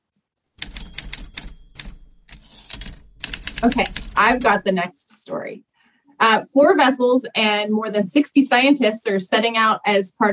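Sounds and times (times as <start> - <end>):
mechanical typewriter keystrokes: 0.6 - 4.4
speech: 3.6 - 10.3.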